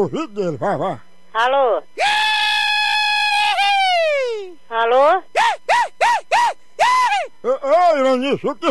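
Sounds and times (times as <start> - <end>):
speech: 0.0 - 2.2, 4.8 - 5.3, 7.4 - 8.6
man screaming into a telephone: 2.0 - 4.6, 5.4 - 7.3.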